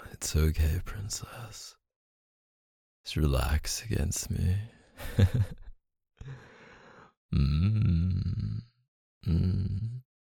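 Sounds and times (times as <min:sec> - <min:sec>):
speech: 0:00.2 - 0:01.8, 0:03.0 - 0:06.5, 0:07.3 - 0:10.1
heavy labored breathing: 0:06.2 - 0:07.2.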